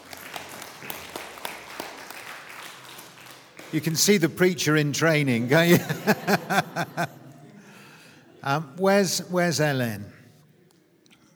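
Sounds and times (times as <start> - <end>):
room full of people applauding: 0.0 - 4.8, 5.5 - 7.3
speech: 3.7 - 7.1, 8.5 - 10.2
laughter: 5.2 - 8.8.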